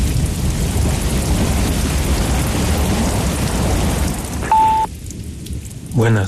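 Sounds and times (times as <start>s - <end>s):
deep thunder rumble: 0.0s - 6.2s
steady heavy rain in a thunderstorm: 0.0s - 6.2s
short electronic beep: 4.4s - 4.9s
speech: 6.0s - 6.2s.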